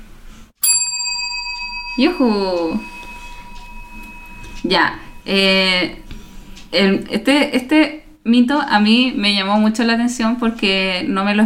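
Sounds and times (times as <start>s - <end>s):
small bell struck once: 0.6s - 6.6s
speech: 2.0s - 2.9s, 4.6s - 6.0s, 6.7s - 11.4s.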